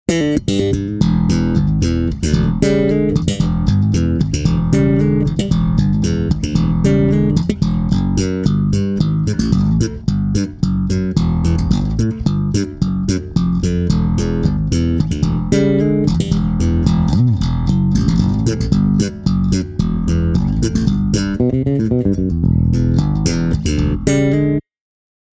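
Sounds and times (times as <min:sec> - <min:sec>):
bright funk bass: 0:00.1 - 0:24.6.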